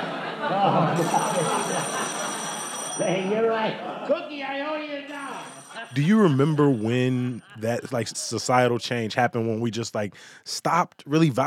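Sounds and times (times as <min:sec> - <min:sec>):
laughter: 0:00.0 - 0:09.3
speech: 0:00.5 - 0:02.2, 0:03.0 - 0:11.4
telephone bell ringing: 0:00.8 - 0:03.8, 0:05.1 - 0:07.4.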